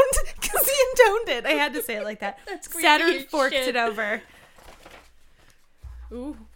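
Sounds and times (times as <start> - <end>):
speech: 1.0 - 4.4, 6.1 - 6.5
paper pages rustling and shuffling: 3.3 - 6.0
low thump: 5.8 - 6.4.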